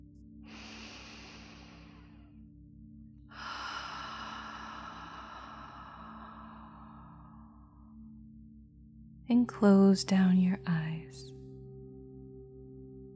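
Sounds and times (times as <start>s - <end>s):
soft steady low drone: 0.0s - 13.1s
slow deep cleansing breaths in a guided meditation: 0.4s - 2.7s, 3.3s - 8.3s
speech: 9.3s - 11.4s.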